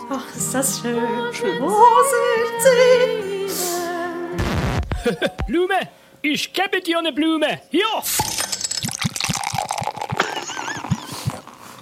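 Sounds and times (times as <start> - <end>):
speech: 0.1 - 3.7, 5.0 - 8.3
laughter: 4.9 - 5.6, 10.2 - 11.3
glasses clinking in a toast: 8.1 - 11.7.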